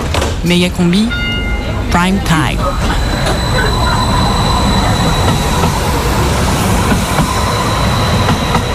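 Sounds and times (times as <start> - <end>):
airport tram departing from a station, rail rumble: 0.0 - 8.7
speech: 0.4 - 1.2, 1.9 - 3.8
thin high squealing tones from airport tram: 2.6 - 8.7.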